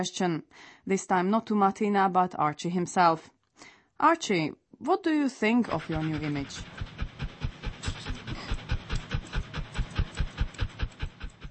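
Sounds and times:
speech: 0.0s - 6.9s
pedigree dog panting: 5.6s - 11.4s.

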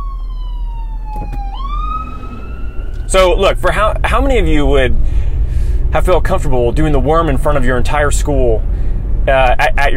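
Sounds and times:
ambulance siren wailing: 0.0s - 4.1s
low rumble of road and engine noise: 0.2s - 9.9s
speech: 3.1s - 5.2s, 5.9s - 9.9s.

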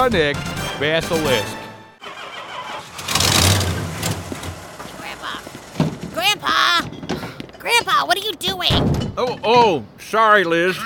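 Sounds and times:
speech: 0.0s - 1.6s, 7.6s - 10.8s
truck engine cranking and failing to start: 2.0s - 7.8s.

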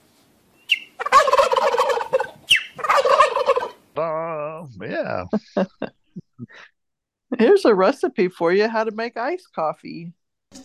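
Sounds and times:
turkey gobbling: 0.7s - 3.8s
laughter: 4.0s - 6.7s
speech: 4.0s - 6.7s, 7.3s - 10.6s.

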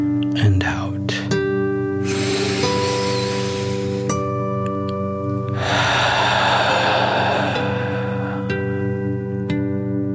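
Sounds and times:
speech: 0.0s - 1.2s
forceful dragon-like breathing: 2.0s - 4.2s, 5.5s - 9.2s
steady sustained musical drone: 2.0s - 4.6s, 5.4s - 10.0s.

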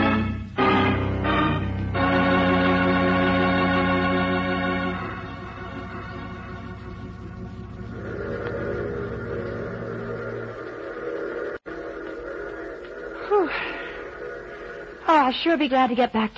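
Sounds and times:
train arriving with heavy mechanical drone: 0.0s - 16.3s
speech: 15.3s - 16.3s.

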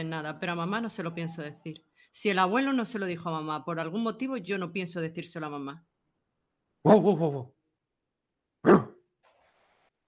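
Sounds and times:
speech: 0.0s - 5.9s, 6.8s - 7.6s, 8.6s - 8.9s
dog barking: 8.6s - 9.0s.

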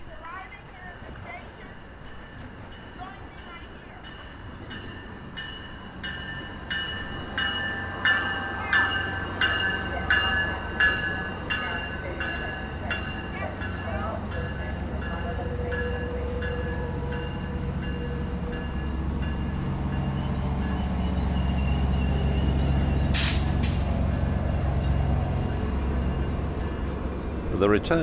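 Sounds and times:
passenger train arriving at station platform: 0.0s - 28.0s
train brakes squealing and hissing as it slows: 21.4s - 24.4s.

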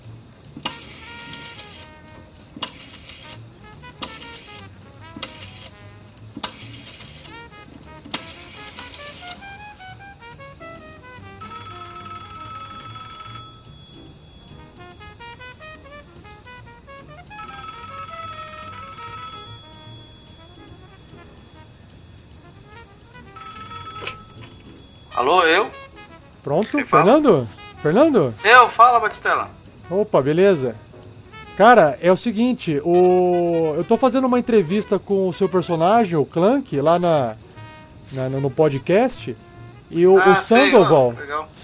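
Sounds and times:
telephone ringback tone on an outgoing call: 11.4s - 14.7s, 17.4s - 21.9s, 23.3s - 25.6s
speech: 25.2s - 25.8s, 26.5s - 30.8s, 31.6s - 37.4s, 38.1s - 41.6s.

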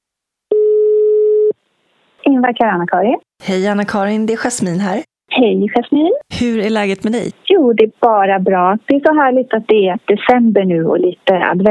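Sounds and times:
telephone ringback tone while calling: 0.5s - 1.5s
speech: 2.4s - 11.7s.

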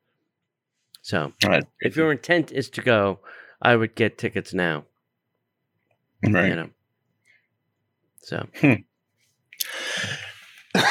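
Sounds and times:
speech: 1.1s - 4.9s, 6.2s - 6.8s, 8.2s - 8.9s
harsh rasping cough from a person with a persistent cough: 10.0s - 10.8s.

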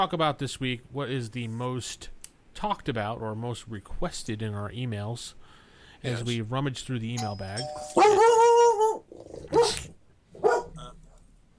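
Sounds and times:
speech: 0.0s - 8.4s
dog barking: 8.0s - 10.8s.

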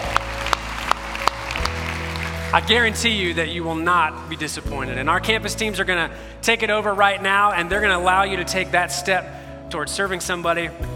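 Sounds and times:
audience clapping: 0.0s - 3.3s
speech: 2.5s - 10.9s.

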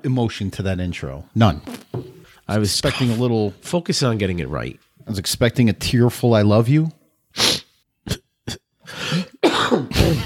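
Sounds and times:
speech: 0.0s - 1.8s, 2.5s - 7.5s
person coughing fit: 8.1s - 10.2s.

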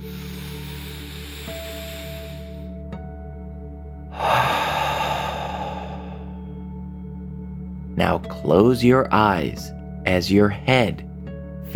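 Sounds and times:
deep exhale through the mouth during a children's mindful breathing exercise: 0.0s - 2.8s, 4.1s - 6.5s
speech: 8.0s - 11.1s.

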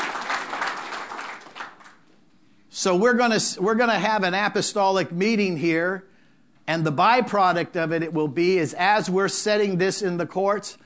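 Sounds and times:
audience clapping at a church service: 0.0s - 2.2s
speech: 2.8s - 6.1s, 6.7s - 10.8s.

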